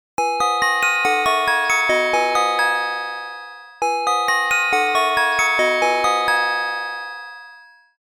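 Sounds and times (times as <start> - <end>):
magical bell chime: 0.2 - 8.0.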